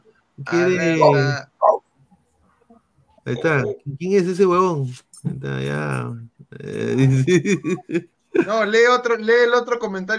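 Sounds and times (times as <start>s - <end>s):
speech: 0.4s - 1.8s, 3.2s - 10.1s
dog barking after being woken by another small dog: 1.6s - 1.8s
laughter: 6.6s - 8.7s.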